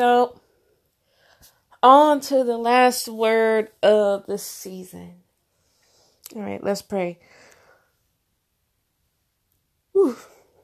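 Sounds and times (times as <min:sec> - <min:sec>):
speech: 0:00.0 - 0:00.4, 0:01.8 - 0:05.2, 0:06.3 - 0:07.4, 0:10.0 - 0:10.3
person yawning: 0:10.0 - 0:10.5.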